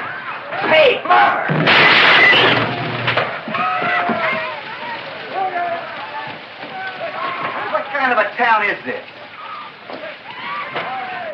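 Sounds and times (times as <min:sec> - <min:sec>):
gunshots in a western-town barbershop: 0:01.4 - 0:04.0
mirror glass breaking in a western-town barbershop: 0:01.5 - 0:06.4
speech: 0:08.0 - 0:09.1.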